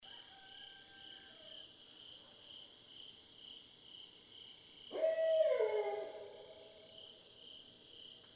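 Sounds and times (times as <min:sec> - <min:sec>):
Barred owl hooting: 0:04.9 - 0:06.6.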